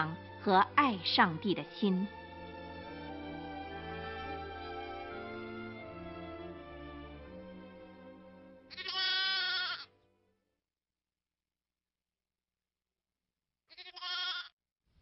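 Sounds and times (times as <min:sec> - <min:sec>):
speech: 0:00.0 - 0:02.2
steady sustained tonal music: 0:00.0 - 0:09.0
lamb bleating as a lion seizes it: 0:08.7 - 0:09.9, 0:13.7 - 0:14.6.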